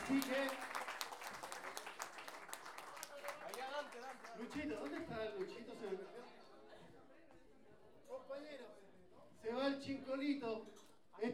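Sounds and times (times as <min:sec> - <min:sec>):
faint audience applause at a payadores folk-poetry tournament: 0:00.0 - 0:06.4
speech: 0:00.1 - 0:00.8, 0:04.4 - 0:06.4, 0:09.4 - 0:11.3.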